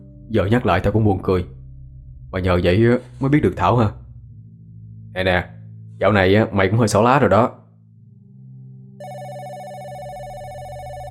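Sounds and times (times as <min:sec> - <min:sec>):
speech: 0:00.3 - 0:01.6, 0:02.3 - 0:04.0, 0:05.2 - 0:07.6
telephone ringing: 0:09.0 - 0:11.0.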